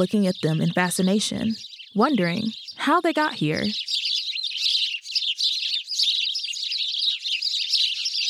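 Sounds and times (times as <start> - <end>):
speech: 0.0 - 4.1
flock of house sparrows chirping: 0.0 - 8.2.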